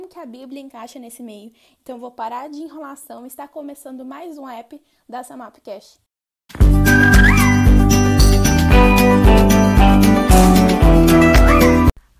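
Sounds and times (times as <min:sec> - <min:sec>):
speech: 0:00.1 - 0:07.2
bouncy intro music jingle with thumping beat and meow-like sliding notes: 0:06.6 - 0:11.9.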